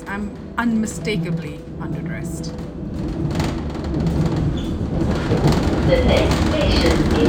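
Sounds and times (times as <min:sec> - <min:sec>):
faint rattling of a train carriage: 0:00.0 - 0:07.2
moving train carriage heading to Plaistow in East London: 0:00.0 - 0:07.2
speech: 0:00.1 - 0:03.4, 0:05.0 - 0:07.2.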